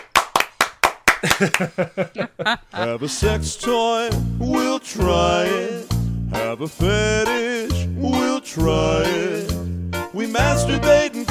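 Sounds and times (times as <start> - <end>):
people clapping their hands: 0.0 - 2.0
laughter: 1.2 - 3.4
speech: 1.2 - 9.5, 10.2 - 11.2.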